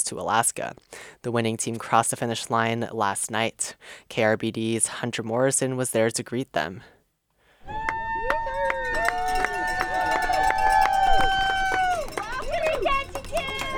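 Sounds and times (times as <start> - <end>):
speech: 0.0 - 7.0
small crowd of spectators cheering and whooping outdoors at a boat harbor: 7.6 - 13.7.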